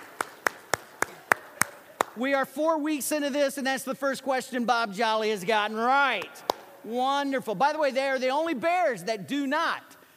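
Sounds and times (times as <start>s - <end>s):
sparse round of applause with sharp claps: 0.0s - 2.2s, 6.2s - 6.7s
speech: 2.2s - 10.0s.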